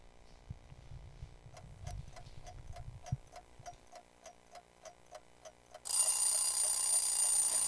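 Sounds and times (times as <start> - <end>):
clock ticking steadily in a song intro: 1.5 - 7.6.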